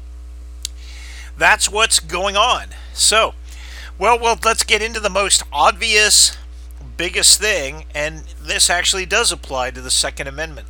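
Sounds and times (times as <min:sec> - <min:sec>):
pellet stove blower humming distributing heat through a small house: 0:00.0 - 0:10.6
speech: 0:01.4 - 0:03.4, 0:04.0 - 0:06.4, 0:07.0 - 0:10.6.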